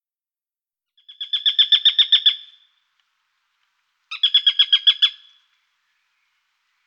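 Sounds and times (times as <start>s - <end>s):
Eurasian sparrowhawk giving harsh chattering calls: 1.0s - 2.6s, 4.1s - 5.4s.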